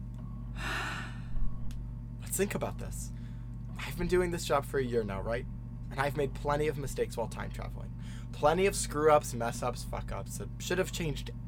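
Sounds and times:
steady low hum: 0:00.0 - 0:11.4
deep breath drawn by a panicking person: 0:00.6 - 0:01.5, 0:08.0 - 0:08.3
speech: 0:02.4 - 0:03.2, 0:04.0 - 0:11.4.

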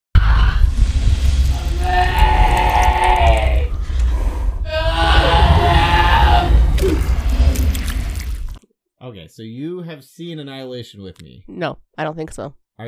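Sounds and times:
creepy bear scream from a film: 0:00.2 - 0:03.8, 0:04.6 - 0:08.2
low rumbling drone: 0:00.2 - 0:08.6
speech: 0:09.3 - 0:12.8.

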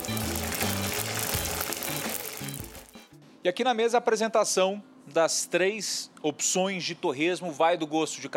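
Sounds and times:
pork rinds frying and crackling in boiling oil: 0:00.0 - 0:03.1
speech: 0:03.4 - 0:08.3.

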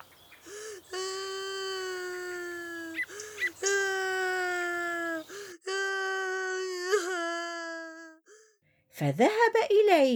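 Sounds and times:
young boy crying after falling off a bicycle: 0:00.4 - 0:08.5
speech: 0:09.0 - 0:10.1.

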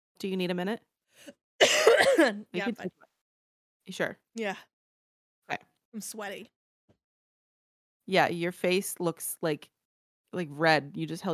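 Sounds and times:
speech: 0:00.2 - 0:03.1, 0:03.9 - 0:04.7, 0:05.5 - 0:06.6, 0:08.1 - 0:09.7, 0:10.3 - 0:11.3
sick person clearing throat: 0:01.6 - 0:02.5
sick person coughing: 0:01.6 - 0:02.5.

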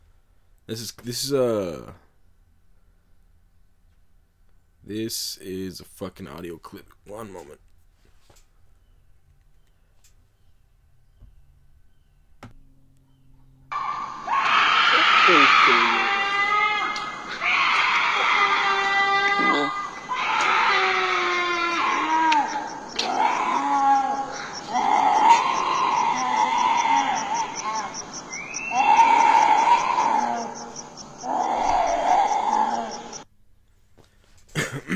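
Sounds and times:
speech: 0:00.7 - 0:02.0, 0:04.9 - 0:07.7
eerie guttural yelling from someone far down a street in Mexico: 0:12.6 - 0:33.3.

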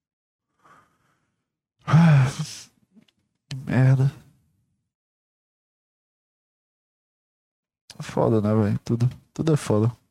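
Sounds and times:
person yawning: 0:01.9 - 0:02.7
speech: 0:03.8 - 0:04.2, 0:08.1 - 0:10.0.

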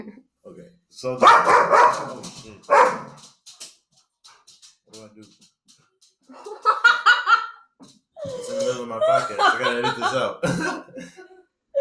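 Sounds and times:
speech: 0:00.9 - 0:03.4, 0:09.6 - 0:11.0
dog yipping: 0:01.2 - 0:02.1, 0:02.7 - 0:03.2
dog barking in the room: 0:01.2 - 0:03.2
laughter: 0:06.3 - 0:07.6, 0:08.2 - 0:11.4.

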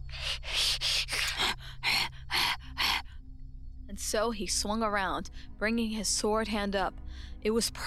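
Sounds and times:
wolf-like beast panting heavily while chasing: 0:00.0 - 0:03.0
low constant hum: 0:00.0 - 0:07.8
speech: 0:04.0 - 0:07.8.

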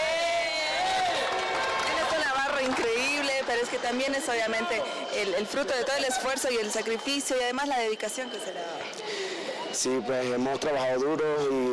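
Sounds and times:
large audience applauding: 0:00.0 - 0:04.6
crowd shouting and cheering: 0:00.0 - 0:10.1
speech: 0:03.6 - 0:11.7.

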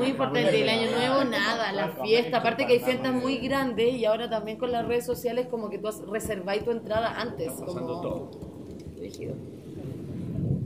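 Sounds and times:
speech: 0:00.1 - 0:09.6
low continuous rumble of thunder: 0:03.5 - 0:10.6.

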